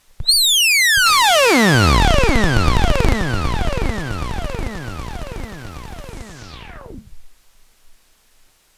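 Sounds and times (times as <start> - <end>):
square wave synth loop: 0.2 - 7.1.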